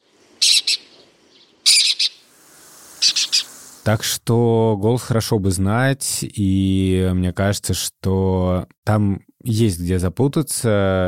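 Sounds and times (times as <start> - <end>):
lesser kestrel calling in harsh rasping bursts: 0.0 - 3.8
speech: 3.9 - 11.0.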